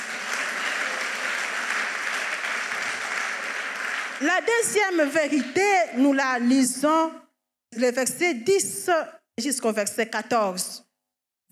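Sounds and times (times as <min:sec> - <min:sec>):
church congregation applauding: 0:00.0 - 0:05.6
speech: 0:04.2 - 0:10.8.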